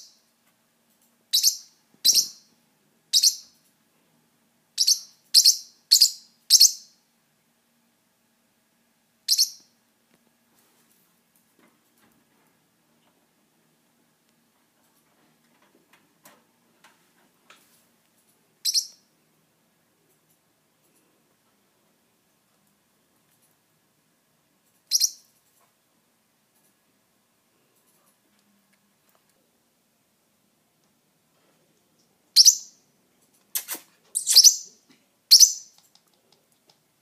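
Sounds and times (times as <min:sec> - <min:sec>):
Forpus parrotlet calling: 0:01.3 - 0:02.5, 0:04.8 - 0:07.0, 0:18.6 - 0:19.1, 0:24.9 - 0:25.3, 0:32.4 - 0:32.8, 0:33.6 - 0:34.8, 0:35.3 - 0:35.7.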